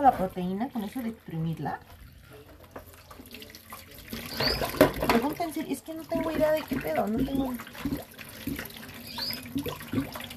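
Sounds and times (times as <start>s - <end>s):
speech: 0.0s - 2.0s, 4.1s - 8.7s, 9.6s - 10.3s
water pouring from a tap onto an ingredient during food preparation: 2.7s - 10.3s.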